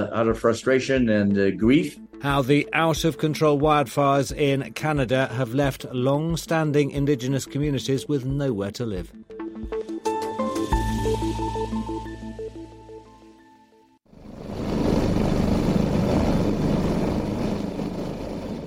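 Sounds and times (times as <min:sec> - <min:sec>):
speech: 0:00.0 - 0:09.3
tonal music: 0:00.5 - 0:14.0
helicopter rotor chopping through the air: 0:14.2 - 0:18.6.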